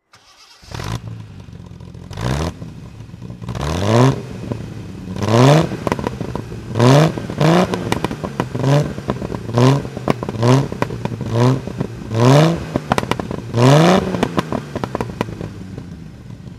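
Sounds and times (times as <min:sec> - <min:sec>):
1969 Triumph TR6 PI engine throttle: 0:00.2 - 0:16.5.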